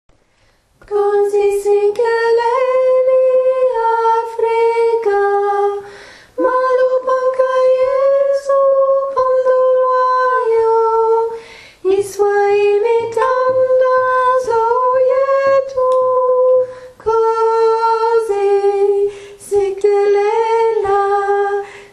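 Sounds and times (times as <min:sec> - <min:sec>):
lead vocal: 0:00.8 - 0:21.9.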